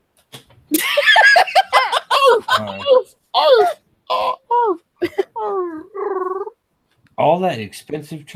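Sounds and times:
laughter: 0.7s - 5.7s
person imitating a dog chirping with squeaky yips: 2.1s - 6.6s
speech: 7.4s - 8.3s.

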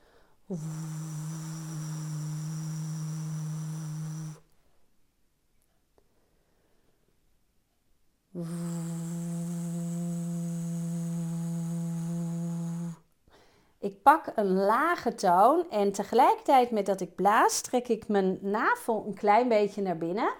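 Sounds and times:
speech: 0.5s - 1.2s, 8.4s - 8.6s, 13.8s - 20.3s
person humming low drones as a vocal warm-up exercise: 0.5s - 4.4s, 8.4s - 13.0s.

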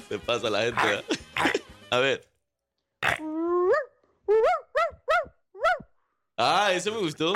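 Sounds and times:
speech: 0.3s - 2.3s, 4.3s - 4.6s, 6.4s - 7.3s
small dog yelping and barking: 3.7s - 5.9s.

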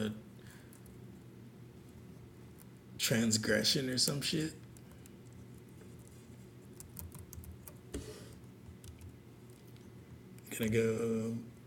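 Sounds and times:
speech: 0.0s - 0.2s, 3.1s - 4.6s, 10.6s - 11.5s
low hum: 0.0s - 11.6s
typing on a keyboard: 6.8s - 7.8s, 8.8s - 9.2s.

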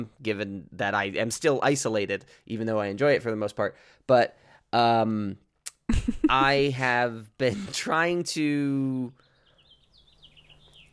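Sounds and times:
speech: 0.0s - 9.2s
bird singing rapid chirps and warbling tweets: 9.1s - 10.9s.

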